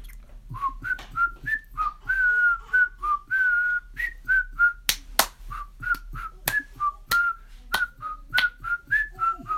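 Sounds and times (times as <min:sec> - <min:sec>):
origami teacher whistling a bouncy cheerful melody while walking along a hallway: 0:00.5 - 0:04.9, 0:05.5 - 0:09.5
sharp finger snaps keeping a steady beat: 0:04.9 - 0:08.6.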